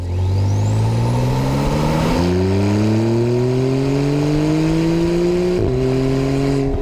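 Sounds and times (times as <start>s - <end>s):
Porsche 911 Turbo turbo whine spooling up: 0.0s - 3.7s
Porsche 911 Turbo engine revving: 0.0s - 6.7s.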